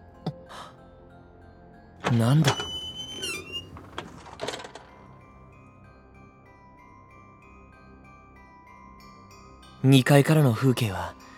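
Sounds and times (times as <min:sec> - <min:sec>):
high squeak of a window: 0:02.0 - 0:04.7
window with brown paper sliding open in a second-floor tatami room: 0:02.0 - 0:04.9
speech: 0:02.1 - 0:02.8, 0:09.8 - 0:11.2.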